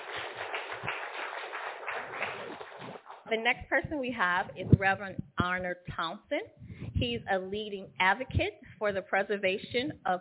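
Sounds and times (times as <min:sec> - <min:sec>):
crowd applauding a speaker: 0:00.0 - 0:03.3
speech: 0:03.3 - 0:10.2.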